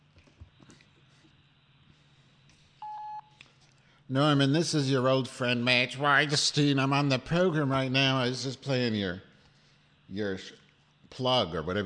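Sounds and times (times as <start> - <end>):
answering machine beep tone: 2.8 - 3.3
speech: 4.1 - 9.3, 10.1 - 11.8.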